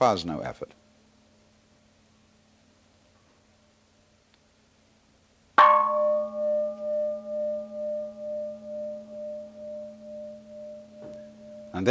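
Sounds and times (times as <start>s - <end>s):
speech: 0.0s - 0.8s
gong ringing: 5.6s - 11.8s.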